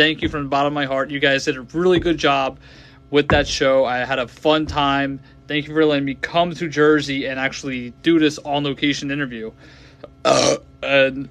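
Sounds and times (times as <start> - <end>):
speech: 0.0 - 11.2
grunt-like vocal sound: 10.0 - 10.6
person burping loudly: 10.0 - 10.7.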